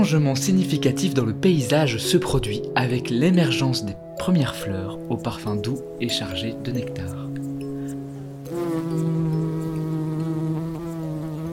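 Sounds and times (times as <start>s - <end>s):
speech: 0.0s - 7.3s
bee buzzing: 4.9s - 11.5s.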